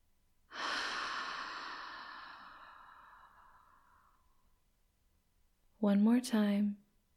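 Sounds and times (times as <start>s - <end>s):
slow breath in a guided breathing exercise: 0.5s - 4.5s
speech: 5.8s - 6.8s.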